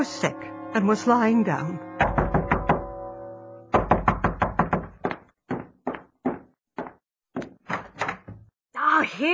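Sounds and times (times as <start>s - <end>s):
speech: 0.0s - 1.9s, 9.2s - 9.3s
loud insistent knocking on a door: 2.0s - 2.9s, 3.8s - 8.4s.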